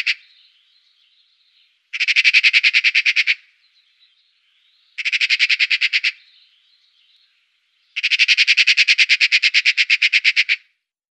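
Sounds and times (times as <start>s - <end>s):
Eurasian magpie Pica pica chattering: 0.0s - 0.2s, 2.0s - 3.5s, 5.0s - 6.3s, 8.0s - 10.6s.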